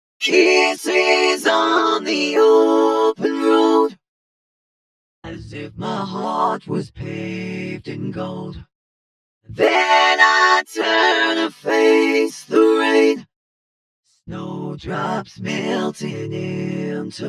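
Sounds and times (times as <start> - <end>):
vocoder voice: 0.2 - 3.9, 5.3 - 8.7, 9.5 - 13.2, 14.3 - 17.2.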